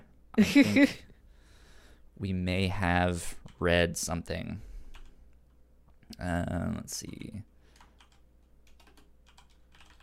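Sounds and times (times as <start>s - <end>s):
low steady hum: 0.0s - 10.0s
speech: 0.4s - 1.1s, 2.2s - 4.7s, 6.1s - 7.5s
typing on a computer keyboard: 7.0s - 10.0s.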